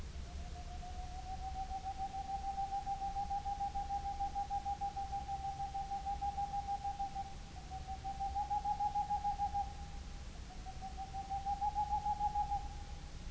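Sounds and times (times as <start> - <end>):
Tengmalm's owl daytime call: 0.1 - 13.2.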